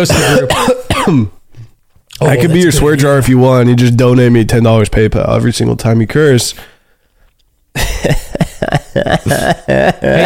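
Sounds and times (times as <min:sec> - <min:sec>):
person coughing: 0:00.0 - 0:01.4, 0:09.2 - 0:10.2
speech: 0:00.0 - 0:01.4, 0:02.2 - 0:06.7, 0:08.0 - 0:08.2, 0:09.0 - 0:10.2.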